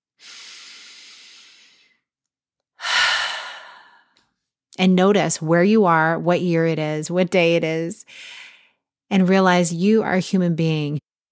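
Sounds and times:
person taking a deep breath: 0.2 - 2.0, 2.8 - 4.2
speech: 4.8 - 8.4, 9.1 - 11.0.

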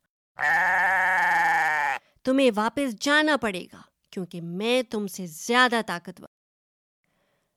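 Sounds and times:
speech: 0.4 - 1.0, 2.3 - 6.4
goat bleating: 0.4 - 2.0.

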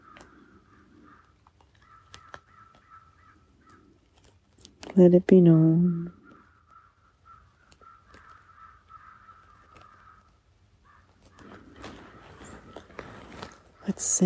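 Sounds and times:
crows cawing in chorus: 0.0 - 4.3, 6.1 - 13.9
faint ambient noise: 0.0 - 14.2
other birds: 0.0 - 14.2
speech: 5.0 - 6.2, 14.1 - 14.2.

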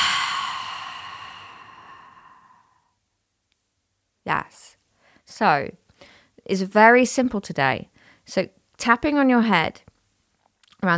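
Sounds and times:
slow deep exhale through the mouth: 0.0 - 2.8
speech: 5.4 - 5.8, 6.4 - 9.9, 10.8 - 10.9.

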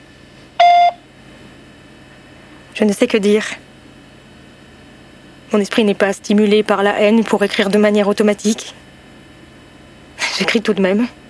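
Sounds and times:
voicemail answering machine beep: 0.6 - 1.0
speech: 2.8 - 3.7, 5.5 - 8.8, 10.4 - 11.2.

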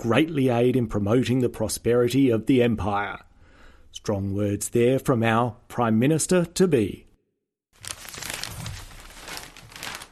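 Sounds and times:
speech: 0.0 - 3.3, 3.9 - 7.0
newspaper page turning: 7.8 - 10.1.

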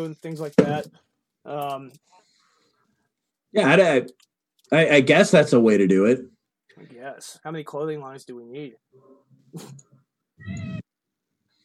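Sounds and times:
speech: 0.0 - 2.2, 3.5 - 10.8
cat meowing: 10.4 - 10.9.

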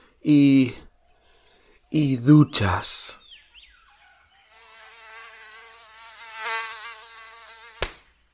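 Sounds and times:
speech: 0.2 - 0.8, 1.9 - 3.2
high whining buzz of mosquitoes: 4.5 - 8.2
sharp slap: 7.8 - 8.2.

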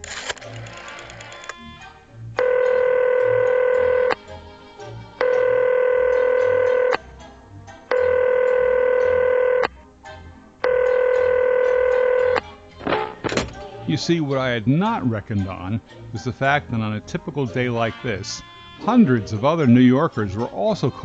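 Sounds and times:
payphone dialing tones: 2.4 - 4.2, 5.1 - 7.0, 7.9 - 9.7, 10.6 - 12.4
speech: 14.0 - 21.0.

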